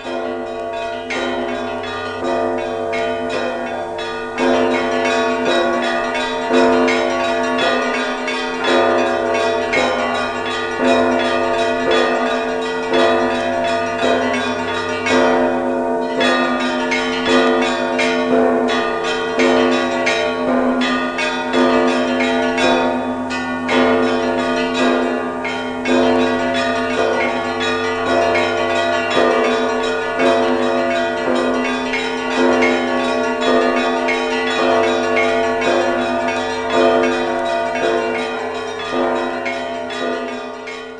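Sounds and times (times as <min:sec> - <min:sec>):
full peal of church bells from a monastery bell tower: 0:00.0 - 0:40.9.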